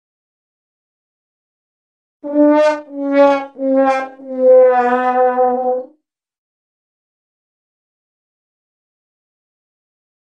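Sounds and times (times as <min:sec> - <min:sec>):
sad trombone: 0:02.2 - 0:05.9.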